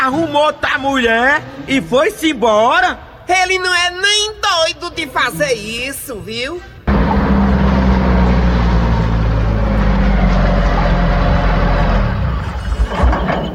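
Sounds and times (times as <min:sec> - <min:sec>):
speech: 0:00.0 - 0:07.4
broad road noise: 0:06.6 - 0:13.5
car engine idling: 0:06.9 - 0:12.7.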